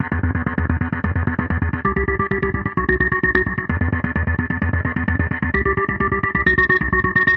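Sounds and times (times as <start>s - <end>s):
dirty arpeggio synth: 0.2s - 7.3s
synth and electronic loops: 1.8s - 4.1s, 5.5s - 7.3s.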